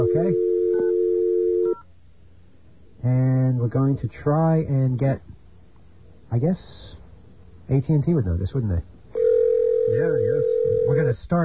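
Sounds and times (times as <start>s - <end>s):
telephone tone on a phone line: 0.0s - 1.8s, 9.2s - 11.0s
speech: 3.7s - 5.4s, 6.3s - 7.0s, 7.7s - 8.9s, 9.9s - 11.4s.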